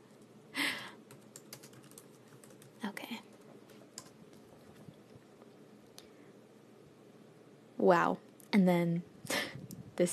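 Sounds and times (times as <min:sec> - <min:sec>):
typing with one hand on a computer keyboard: 0:01.0 - 0:04.8
speech: 0:07.8 - 0:09.4, 0:10.0 - 0:10.1.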